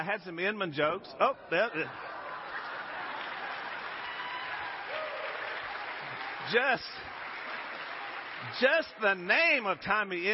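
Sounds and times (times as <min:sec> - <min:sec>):
speech: 0:00.0 - 0:02.2, 0:06.5 - 0:07.1, 0:08.4 - 0:10.3
laughter: 0:01.2 - 0:04.2
audience applause at a live event: 0:02.0 - 0:10.3.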